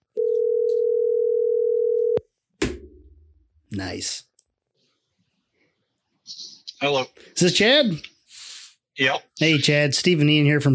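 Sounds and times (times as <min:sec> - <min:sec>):
telephone dial tone: 0:00.2 - 0:02.2
speech: 0:03.7 - 0:04.3, 0:06.3 - 0:08.1, 0:09.0 - 0:10.7.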